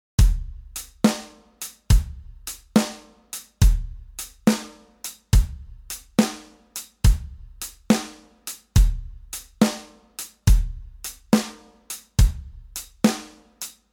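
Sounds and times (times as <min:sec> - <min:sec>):
drum kit shuffle beat: 0:00.2 - 0:13.9.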